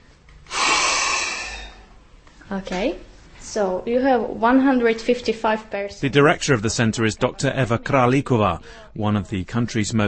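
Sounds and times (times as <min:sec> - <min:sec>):
person breathing out into a breath test device: 0:00.5 - 0:01.9
speech: 0:02.5 - 0:10.0.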